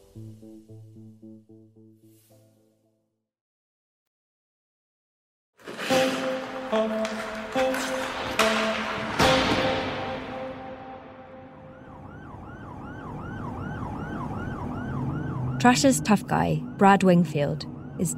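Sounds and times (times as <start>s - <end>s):
speech: 0.2s - 2.7s, 15.6s - 18.1s
ambulance horn blasts: 5.8s - 12.0s
ambulance siren wailing: 7.4s - 18.1s
traffic rumble: 11.7s - 18.1s.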